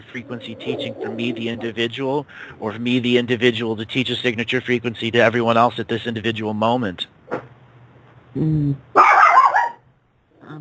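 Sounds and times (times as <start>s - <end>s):
dog giving a low growl-like woof: 0.1s - 1.7s
speech: 0.1s - 7.2s, 8.4s - 9.0s
dog barking: 9.0s - 9.9s.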